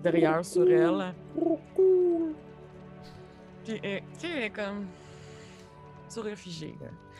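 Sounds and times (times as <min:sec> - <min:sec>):
speech: 0:00.0 - 0:02.2, 0:03.7 - 0:05.0, 0:06.1 - 0:07.1
pigeon cooing: 0:00.5 - 0:02.4.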